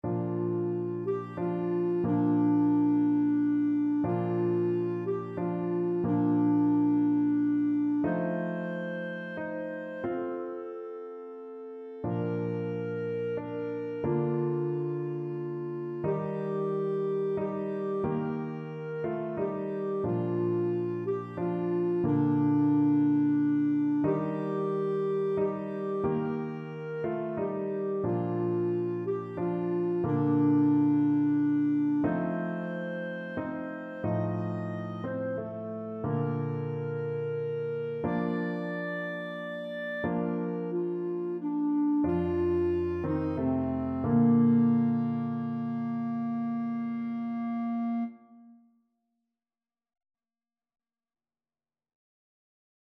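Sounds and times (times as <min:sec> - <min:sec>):
clarinet playing a carol: 0:00.0 - 0:48.6.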